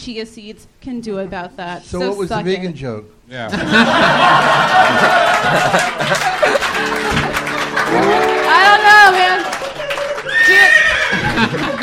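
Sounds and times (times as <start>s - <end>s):
speech: 0.0s - 7.2s
laughter: 3.5s - 11.8s
horse whinnying: 10.2s - 11.3s.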